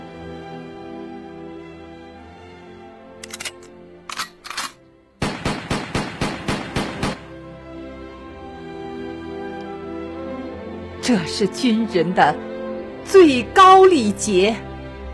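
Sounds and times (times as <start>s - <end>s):
rifle shots fired into the sky as a military salute: 3.3s - 7.3s
speech: 11.1s - 12.5s, 13.1s - 14.7s.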